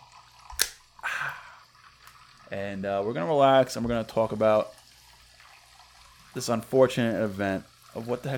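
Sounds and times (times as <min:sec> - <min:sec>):
seltzer water fizzing with crisp hiss: 0:00.0 - 0:08.3
sharp snap: 0:00.6 - 0:00.8
speech: 0:02.5 - 0:04.8, 0:06.3 - 0:08.3.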